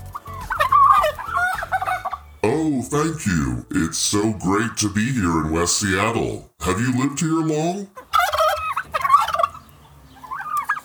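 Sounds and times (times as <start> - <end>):
turkey gobbling: 0.1 - 2.4, 6.6 - 10.8
speech: 2.4 - 8.0.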